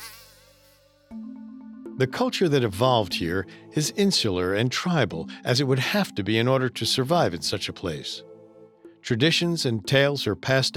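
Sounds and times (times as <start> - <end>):
high-pitched mosquito whine: 0.0 - 1.5
speech: 2.0 - 8.3, 9.1 - 10.7.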